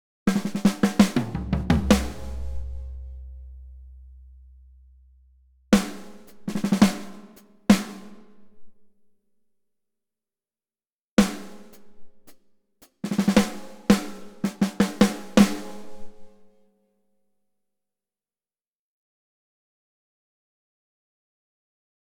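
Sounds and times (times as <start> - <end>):
raw drums: 0.3 - 4.8, 5.8 - 8.7, 11.2 - 16.5.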